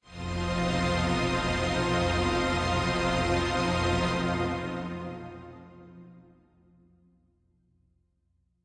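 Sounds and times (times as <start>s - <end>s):
heavy strings pad in F: 0.1s - 6.0s.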